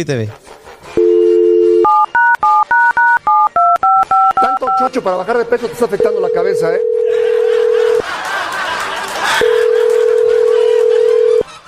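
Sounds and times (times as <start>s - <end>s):
speech: 0.0s - 0.6s, 4.8s - 7.2s
cell phone dial tone: 1.0s - 4.7s, 6.2s - 8.0s, 9.4s - 11.4s
two-note cell phone keypad beeps: 1.1s - 4.9s
laughter: 7.0s - 11.6s.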